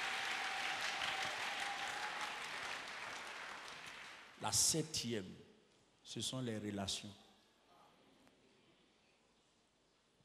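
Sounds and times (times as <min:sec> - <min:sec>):
church conference audience applauding and cheering: 0:00.0 - 0:04.4
speech: 0:04.4 - 0:05.5, 0:06.1 - 0:07.2.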